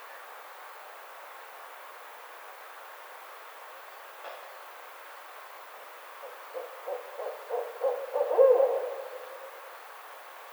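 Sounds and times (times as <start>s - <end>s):
barred owl hooting: 6.5s - 9.5s.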